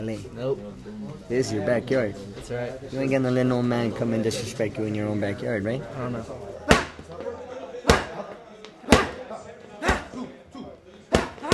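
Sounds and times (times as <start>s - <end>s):
speech: 0.0s - 6.5s
murmur of voices: 0.0s - 11.5s
boxing punches hitting padded coach mitts: 6.7s - 7.1s, 7.9s - 8.2s, 8.9s - 9.2s, 9.8s - 10.2s, 11.1s - 11.5s.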